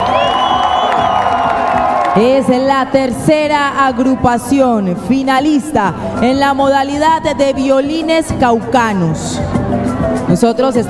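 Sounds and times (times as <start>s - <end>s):
audience cheering with whoops and shouts: 0.0s - 2.6s
speech: 2.2s - 10.8s.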